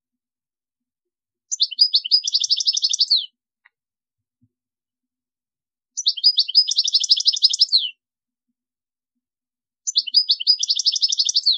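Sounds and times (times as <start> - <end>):
European goldfinch singing: 1.5 - 3.2, 6.0 - 7.9, 9.9 - 11.5.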